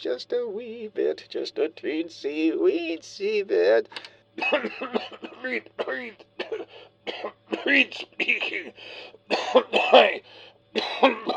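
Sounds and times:
speech: 0:00.0 - 0:11.3
harsh rasping coughs of a sick man gassed in war: 0:04.4 - 0:11.3
faint wheezy breath of a sick man: 0:06.6 - 0:07.0, 0:08.7 - 0:09.3, 0:10.2 - 0:10.7.

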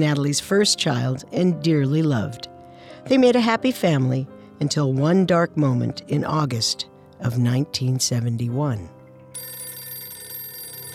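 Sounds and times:
speech: 0:00.0 - 0:09.0
telephone bell ringing with a bright metallic jangle: 0:09.4 - 0:10.9.

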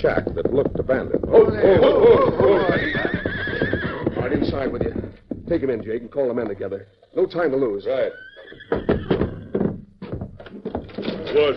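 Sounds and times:
speech: 0:00.0 - 0:03.0, 0:04.3 - 0:09.0, 0:11.3 - 0:11.5
horse neighing: 0:01.3 - 0:05.2, 0:07.8 - 0:09.7.

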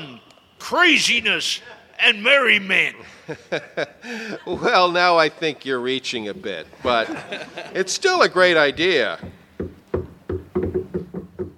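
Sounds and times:
speech: 0:00.7 - 0:09.4
laughter: 0:03.0 - 0:05.1, 0:06.7 - 0:08.0
firm hollow knocks on a door: 0:09.1 - 0:11.5.

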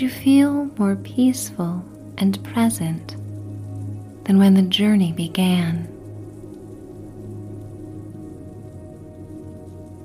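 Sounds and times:
speech: 0:00.0 - 0:03.2, 0:04.3 - 0:05.9
big raindrops falling on a glistening village sidewalk: 0:00.0 - 0:10.0.

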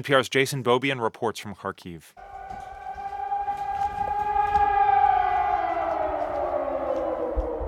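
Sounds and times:
speech: 0:00.0 - 0:02.4
air raid siren wailing: 0:02.2 - 0:07.6.

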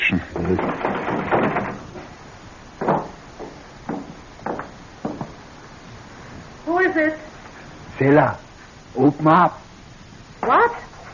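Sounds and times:
speech: 0:00.1 - 0:00.9, 0:08.0 - 0:08.4, 0:09.0 - 0:09.6
knocking on a back door: 0:00.4 - 0:02.1, 0:02.8 - 0:05.4.

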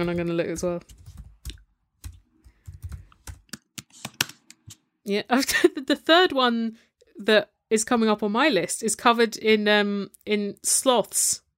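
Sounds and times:
speech: 0:00.0 - 0:01.0, 0:05.0 - 0:11.4
typing on a computer keyboard: 0:00.1 - 0:04.5.

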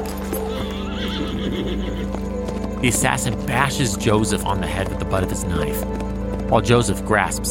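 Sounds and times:
loud horse whinny: 0:00.0 - 0:02.5
horse galloping off into the darkness: 0:00.0 - 0:07.4
speech: 0:02.8 - 0:07.4.

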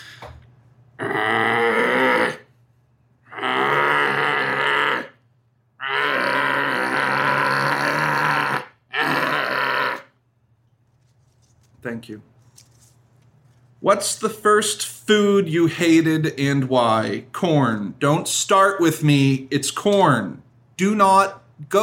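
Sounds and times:
person imitating a bear-walrus monster with guttural growls and rasping roar: 0:01.0 - 0:02.5, 0:03.3 - 0:05.2, 0:05.8 - 0:10.1
speech: 0:11.9 - 0:12.7, 0:13.9 - 0:21.8.

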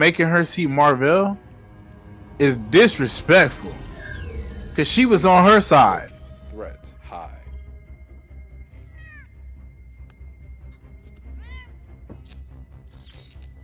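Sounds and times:
speech: 0:00.0 - 0:01.4, 0:02.4 - 0:03.8, 0:04.8 - 0:06.1
cat meowing: 0:08.8 - 0:09.3, 0:11.4 - 0:11.8.

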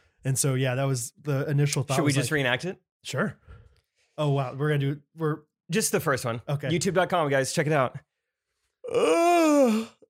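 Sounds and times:
speech: 0:00.2 - 0:03.6, 0:04.2 - 0:08.1, 0:08.9 - 0:10.0
person yawning: 0:08.8 - 0:10.0.

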